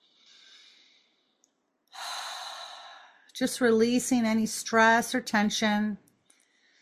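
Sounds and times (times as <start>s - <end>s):
slow relaxed breathing in and out during a calming exercise: 0.0s - 3.4s, 6.3s - 6.8s
speech: 3.4s - 6.0s.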